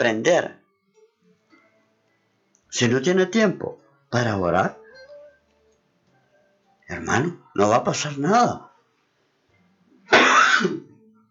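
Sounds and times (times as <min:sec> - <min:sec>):
speech: 0:00.0 - 0:00.6, 0:02.7 - 0:04.8, 0:06.9 - 0:08.7
dry cough: 0:10.1 - 0:10.9.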